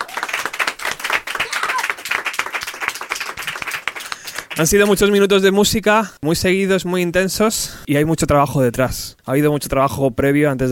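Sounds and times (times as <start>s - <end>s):
sustained applause from a small group: 0.0s - 5.4s
speech: 4.6s - 10.6s.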